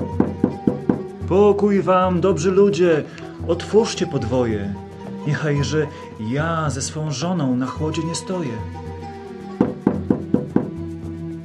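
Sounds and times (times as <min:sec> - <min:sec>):
firm knocking on a wooden door: 0:00.0 - 0:01.2, 0:09.5 - 0:10.8
speech: 0:01.3 - 0:08.9.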